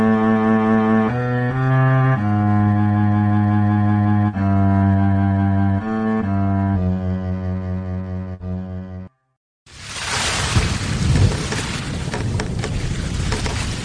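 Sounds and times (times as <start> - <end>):
steady musical tone: 0.0 - 9.1
heavy thunderstorm rain lashing a boat on a lake: 9.7 - 13.8.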